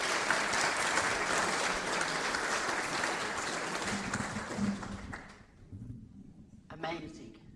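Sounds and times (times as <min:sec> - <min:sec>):
audience applause: 0:00.0 - 0:05.5.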